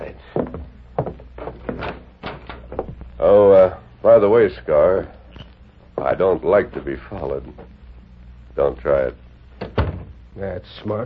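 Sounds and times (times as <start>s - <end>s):
door being opened: 1.4s - 3.0s, 9.6s - 10.2s
speech: 4.1s - 5.2s, 6.0s - 7.8s, 8.6s - 11.0s.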